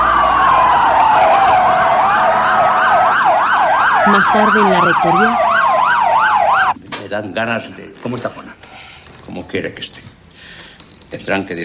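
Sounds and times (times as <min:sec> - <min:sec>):
emergency sirens of ambulances and police cars leaving a scene: 0:00.0 - 0:06.8
road noise: 0:00.0 - 0:06.8
speech: 0:04.2 - 0:05.5, 0:07.1 - 0:08.6, 0:09.3 - 0:10.2, 0:11.1 - 0:11.6.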